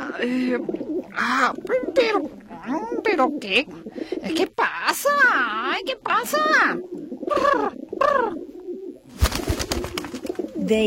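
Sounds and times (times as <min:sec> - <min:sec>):
dove cooing: 0:00.0 - 0:10.8
speech: 0:00.2 - 0:08.4, 0:10.7 - 0:10.8
rapid fluttering noise: 0:09.1 - 0:10.4.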